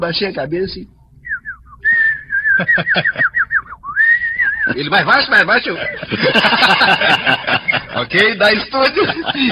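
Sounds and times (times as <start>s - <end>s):
speech: 0.0s - 1.0s, 2.6s - 3.4s, 4.7s - 9.5s
person whistling a lively birdsong imitation: 1.2s - 4.9s
laughter: 2.4s - 3.8s, 4.4s - 9.5s.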